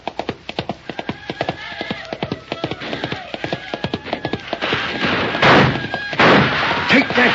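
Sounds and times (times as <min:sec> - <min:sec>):
horse hooves pounding while galloping: 0:00.0 - 0:07.3
horse neighing: 0:01.0 - 0:06.2.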